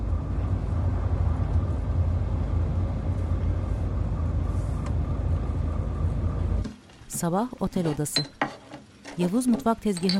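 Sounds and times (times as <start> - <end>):
car driving at night heard from inside: 0.0 - 6.7
speech: 7.2 - 8.4, 9.2 - 10.1.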